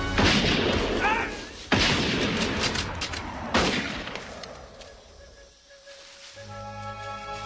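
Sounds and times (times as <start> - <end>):
gunfire blasts in a battle: 0.1 - 4.5.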